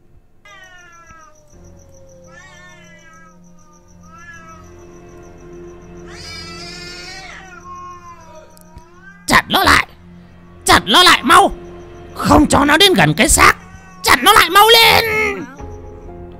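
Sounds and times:
cat screeching and yowling savagely: 0:00.5 - 0:05.2, 0:06.0 - 0:09.9, 0:13.1 - 0:15.6
speech: 0:09.5 - 0:09.8, 0:10.9 - 0:11.6, 0:12.2 - 0:13.6, 0:14.2 - 0:15.2.

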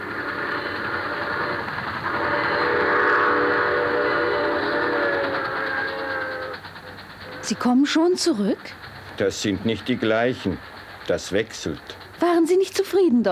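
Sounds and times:
train whistle: 0:00.0 - 0:06.6
train with locomotive passing: 0:00.0 - 0:13.2
speech: 0:07.5 - 0:13.2.

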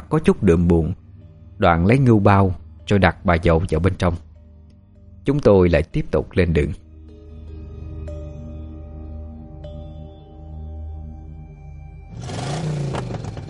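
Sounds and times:
speech: 0:00.1 - 0:01.0, 0:01.6 - 0:04.3, 0:05.2 - 0:06.8
car engine roaring at full throttle speeding onto a national highway: 0:12.1 - 0:13.4.

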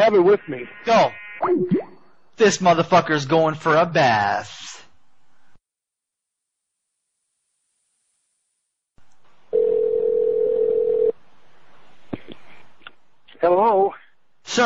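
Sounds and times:
speech: 0:00.0 - 0:04.7, 0:13.4 - 0:14.6
telephone dial tone: 0:09.6 - 0:11.1.

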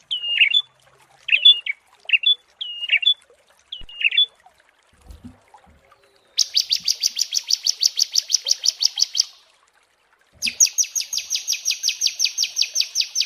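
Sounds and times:
prinia singing: 0:00.1 - 0:00.7, 0:01.3 - 0:04.4, 0:06.0 - 0:09.4, 0:10.4 - 0:13.2.

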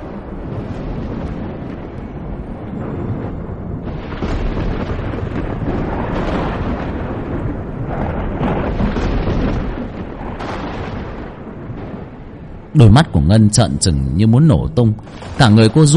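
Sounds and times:
thunder and lightning strike: 0:00.0 - 0:13.6, 0:14.9 - 0:15.9
speech: 0:12.8 - 0:15.9.

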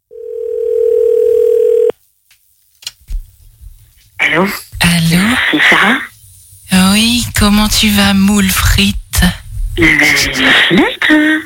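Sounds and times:
low-pitched telephone dial tone as a call is placed: 0:00.1 - 0:01.9
speech: 0:04.4 - 0:04.7, 0:05.5 - 0:06.1, 0:06.7 - 0:11.4.

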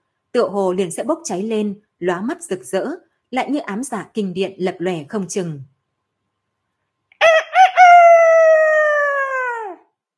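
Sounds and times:
speech: 0:00.4 - 0:05.7
rooster crowing: 0:07.2 - 0:09.9.

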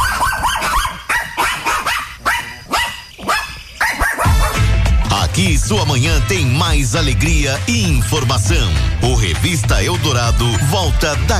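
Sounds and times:
dogs' higher yips: 0:00.0 - 0:04.6
dogs barking as a radio sound effect: 0:00.0 - 0:04.8
speech: 0:05.7 - 0:11.3.

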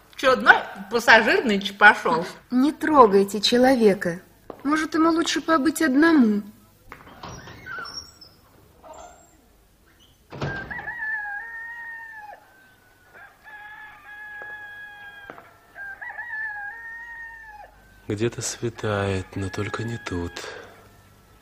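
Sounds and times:
speech: 0:00.2 - 0:06.5, 0:18.1 - 0:20.6
roosters crowing: 0:07.0 - 0:21.4.

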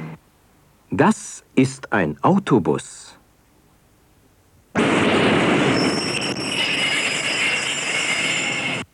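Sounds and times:
speech: 0:01.0 - 0:03.1
underground subway train rumbling by: 0:04.8 - 0:08.9
subway train metallic wheel squeal: 0:05.6 - 0:08.9.

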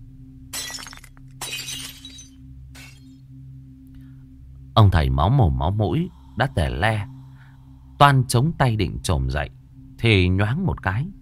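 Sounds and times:
low steady hum: 0:00.0 - 0:11.1
tinkling broken glass debris: 0:00.5 - 0:03.1
glass cabinet smashing and shattering: 0:00.5 - 0:03.2
speech: 0:04.8 - 0:07.2, 0:08.0 - 0:11.1.

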